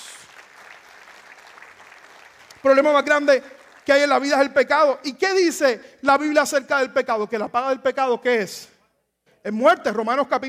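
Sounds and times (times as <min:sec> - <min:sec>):
audience applauding: 0:00.0 - 0:04.5
speech: 0:02.6 - 0:08.7, 0:09.4 - 0:10.4.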